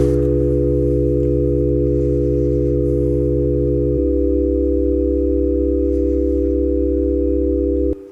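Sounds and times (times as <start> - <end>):
chord of steady pure sine tones: 0.0 - 8.0.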